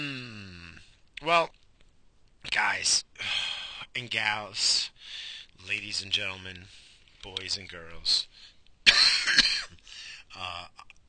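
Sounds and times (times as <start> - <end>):
speech: 2.8 - 3.4, 4.0 - 8.5, 10.4 - 10.9
person coughing with throat-clearing rasps and raspy hacks: 8.9 - 9.8.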